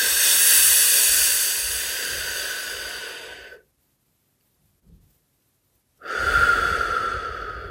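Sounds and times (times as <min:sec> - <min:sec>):
inhaling through pursed lips: 0:00.0 - 0:03.6, 0:06.0 - 0:07.6.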